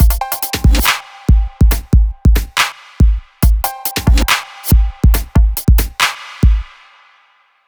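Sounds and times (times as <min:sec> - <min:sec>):
dubstep drum loop: 0:00.0 - 0:07.1.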